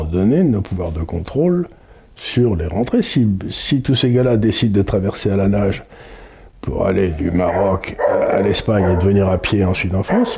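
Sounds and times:
speech: 0.1 - 10.3
dog barking: 7.1 - 10.3.

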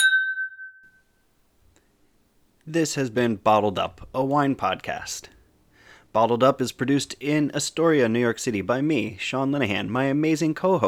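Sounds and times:
wine glasses clinking in a toast: 0.0 - 1.0
speech: 2.7 - 5.4, 6.1 - 10.8.

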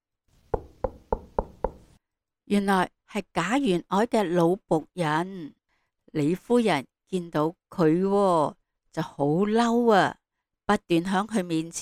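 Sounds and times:
knocking on a door: 0.5 - 2.0
speech: 2.5 - 11.8.

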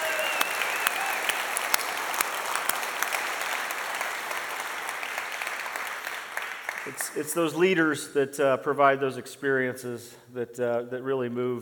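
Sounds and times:
crowd clapping: 0.0 - 7.5
speech: 6.9 - 11.6.

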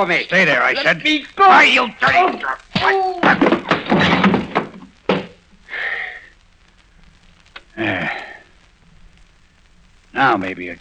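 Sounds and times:
speech: 0.0 - 4.1, 7.8 - 8.3, 10.2 - 10.8
scuffle of rough noisy movement: 1.5 - 5.4
man hitting the floor with a heavy thud: 2.8 - 5.4.

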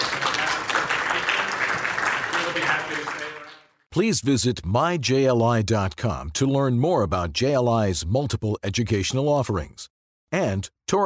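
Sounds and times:
audience applause: 0.0 - 3.8
speech: 2.6 - 3.2, 3.9 - 11.0.

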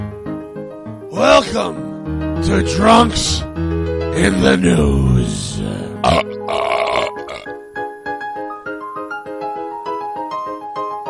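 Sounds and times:
speech: 1.2 - 6.6
loud drawn-out burp: 5.8 - 7.6.

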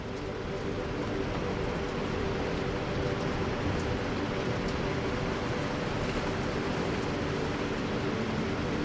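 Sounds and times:
distant rumble of Niagara Falls: 0.0 - 8.8
steady rain: 0.0 - 8.8.

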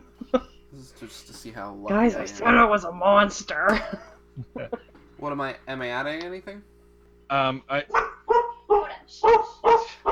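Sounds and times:
speech: 0.3 - 6.7, 7.3 - 8.1, 9.1 - 10.0
person imitating dog barking: 7.9 - 10.0.

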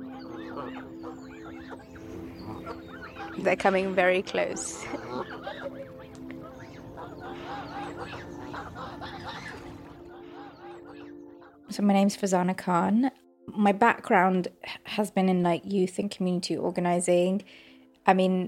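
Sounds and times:
several ducks quacking in an overlapping chorus: 0.0 - 11.8
speech: 3.4 - 5.4, 11.7 - 18.4.

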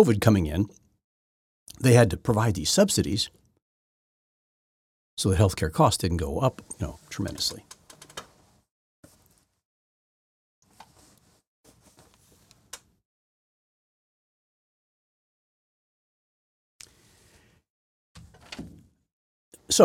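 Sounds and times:
speech: 0.0 - 0.8, 1.7 - 3.4, 5.2 - 7.8
person shifting position in a chair, rustling and creaking: 6.6 - 9.6, 10.7 - 12.9, 18.2 - 18.8.

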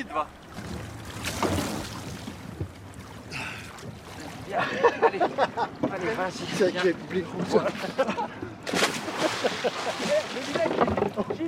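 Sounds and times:
speech: 0.0 - 0.4, 4.5 - 8.8, 9.6 - 11.4
boat wake water washing and splashing: 0.0 - 8.0, 8.6 - 11.4
passing boat engine rumbling: 0.0 - 11.4
laughter: 4.5 - 6.2, 7.3 - 10.5.

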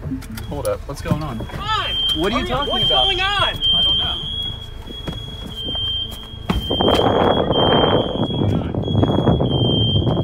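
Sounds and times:
speech: 0.1 - 4.3, 6.7 - 7.6
shrill high-pitched smoke alarm: 0.4 - 10.2
footsteps: 2.8 - 7.4.

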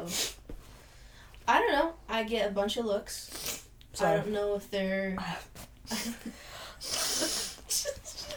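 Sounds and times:
speech: 0.0 - 0.3, 1.5 - 7.4
person blowing nose: 6.8 - 7.8.

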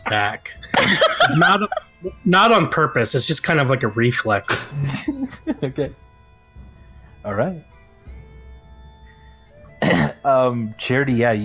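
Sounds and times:
speech: 0.1 - 6.0, 7.2 - 7.7, 9.8 - 11.4
laughter: 0.6 - 2.2, 4.5 - 5.9
small short cough from a man: 0.7 - 1.8, 4.5 - 5.7, 9.8 - 10.3.

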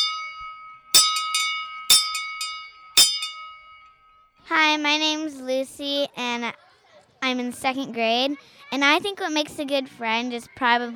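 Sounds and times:
school bell ringing for class: 0.0 - 4.1
speech: 4.7 - 10.9.

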